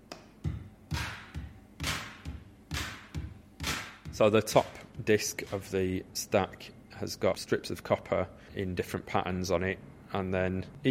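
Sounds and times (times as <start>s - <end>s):
synthesized snare-like bursts: 0.1s - 4.8s
synthesized kick drum thumps: 0.4s - 5.1s
speech: 4.2s - 10.8s.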